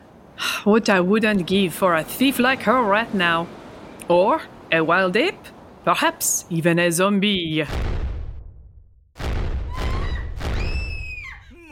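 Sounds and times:
speech: 0.6s - 7.9s
loud explosion with deep rumble: 7.7s - 11.2s.

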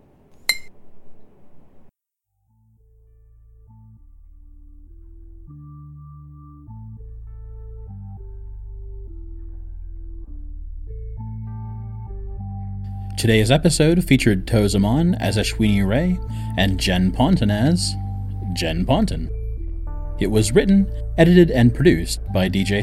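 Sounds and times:
glass clinking: 0.5s - 0.7s
music track: 3.0s - 22.8s
speech: 13.2s - 18.0s, 18.6s - 19.4s, 20.2s - 22.8s.

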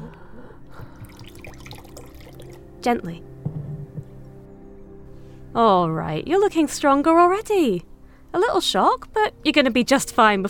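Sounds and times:
water being poured: 0.8s - 2.7s
speech: 2.8s - 3.3s, 5.6s - 10.4s.

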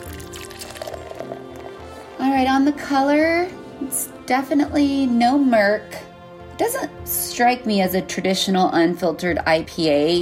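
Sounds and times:
unfiltered double IPA pouring into a glass: 0.0s - 2.0s
speech: 2.3s - 6.0s, 6.6s - 10.2s.

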